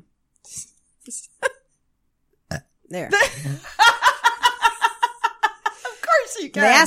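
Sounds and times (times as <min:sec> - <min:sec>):
person burping on command: 0:02.5 - 0:02.7
speech: 0:02.9 - 0:03.8, 0:06.6 - 0:06.8
laughter: 0:03.2 - 0:06.2.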